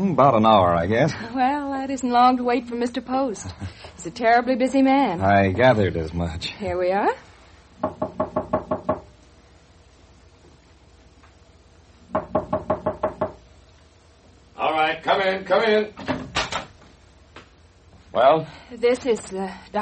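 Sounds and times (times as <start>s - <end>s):
speech: 0.1s - 8.1s, 15.2s - 16.1s, 18.1s - 19.8s
sharp knocking on a door: 7.8s - 9.2s, 12.1s - 13.4s.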